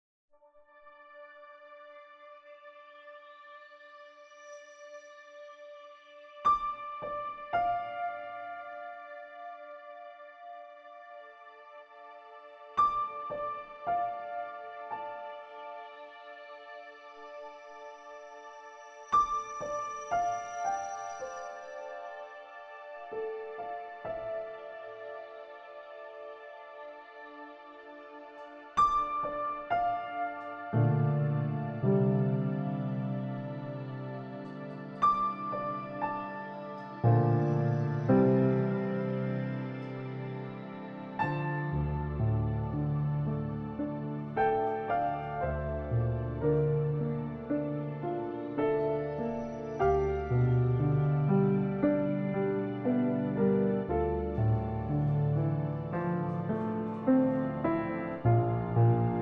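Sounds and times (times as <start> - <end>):
sad piano music: 0.6 - 59.2.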